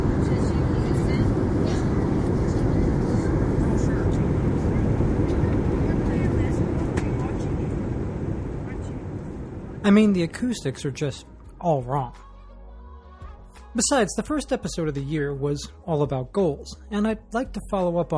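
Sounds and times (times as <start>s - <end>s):
Airbus A321 passenger jet cabin noise in flight: 0.0s - 11.4s
speech: 9.9s - 12.3s, 13.8s - 18.1s.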